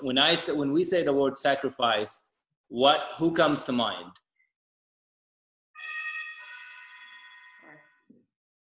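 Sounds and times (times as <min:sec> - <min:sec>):
speech: 0:00.0 - 0:04.2
house doorbell two-tone electronic chime: 0:05.8 - 0:07.7.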